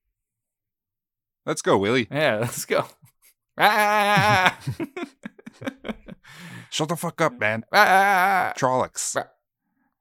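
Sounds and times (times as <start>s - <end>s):
speech: 1.5s - 9.4s
laughter: 2.4s - 6.6s
person imitating a sheep bleat: 3.6s - 4.6s, 7.4s - 8.6s.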